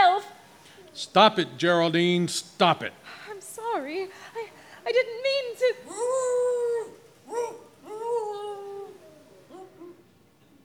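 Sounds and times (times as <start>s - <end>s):
speech: 1.0s - 6.3s
dog howling: 5.8s - 10.1s.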